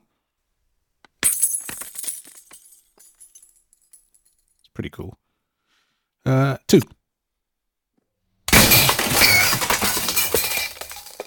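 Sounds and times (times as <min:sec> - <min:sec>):
keys dropped down a well crashing onto glass: 0:01.2 - 0:04.6, 0:08.5 - 0:11.2
speech: 0:04.8 - 0:05.2, 0:06.2 - 0:07.0.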